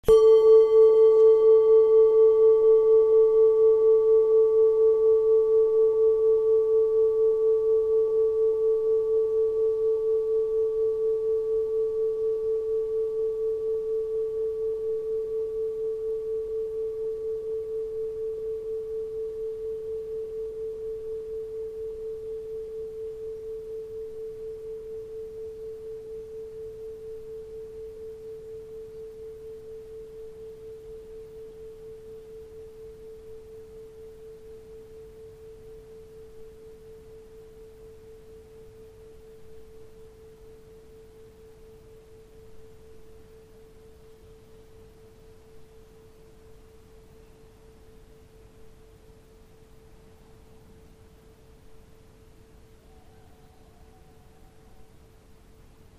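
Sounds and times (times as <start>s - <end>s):
planet singing bowl: 0.0s - 55.3s.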